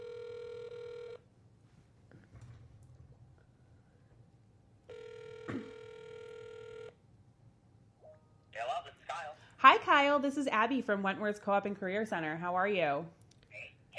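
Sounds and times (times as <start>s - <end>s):
electronic ringback tones of an outgoing phone call: 0.0s - 1.2s, 4.9s - 7.0s
speech: 10.0s - 13.2s.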